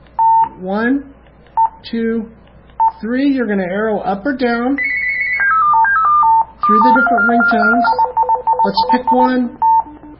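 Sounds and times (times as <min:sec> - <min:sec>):
speech: 0:00.6 - 0:01.2, 0:01.8 - 0:02.4, 0:03.0 - 0:04.9, 0:06.7 - 0:08.0, 0:08.6 - 0:09.6
phone keypad beeps from pressing the menu button: 0:04.9 - 0:10.1.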